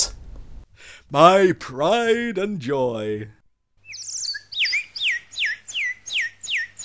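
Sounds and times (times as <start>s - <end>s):
speech: 1.1s - 3.4s
bird-like twittering chirps: 3.8s - 6.8s.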